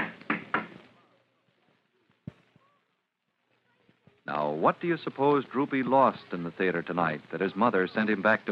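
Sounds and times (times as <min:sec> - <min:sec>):
heavy knocking on a door: 0:00.0 - 0:00.8
speech: 0:04.3 - 0:08.5.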